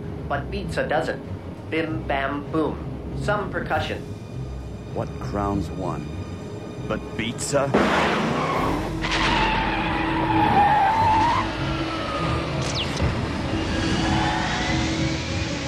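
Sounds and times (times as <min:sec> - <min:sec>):
road rumble: 0:00.0 - 0:15.6
speech: 0:00.3 - 0:04.2, 0:05.0 - 0:06.2, 0:06.9 - 0:08.8, 0:10.4 - 0:10.8
speeding car engine roar: 0:07.7 - 0:15.6
tires squealing as a speeding car skids reversing course: 0:07.7 - 0:15.6.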